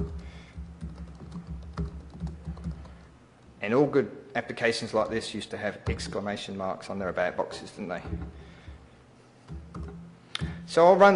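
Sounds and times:
computer keyboard typing: 0:00.0 - 0:03.0
speech: 0:03.6 - 0:08.5, 0:10.7 - 0:11.1.

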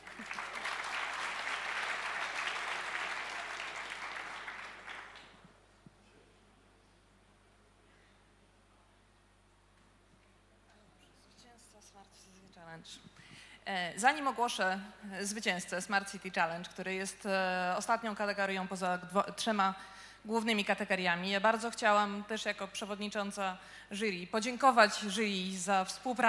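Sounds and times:
loud audience applause from a large crowd: 0:00.0 - 0:05.4
speech: 0:12.6 - 0:26.2.

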